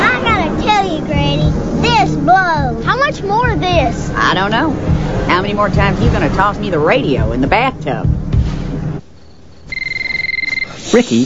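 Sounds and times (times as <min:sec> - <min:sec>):
low rumble: 0:00.2 - 0:09.0
speech: 0:03.1 - 0:08.2, 0:10.9 - 0:11.2
faint chirp: 0:09.1 - 0:10.9
telephone behind a sofa cushion ringing with a trilling electronic tone: 0:09.7 - 0:10.8.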